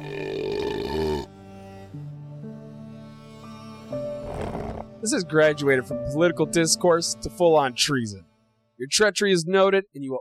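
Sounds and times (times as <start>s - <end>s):
long loud belch: 0.0s - 1.3s, 4.3s - 4.9s
speech: 5.0s - 10.2s.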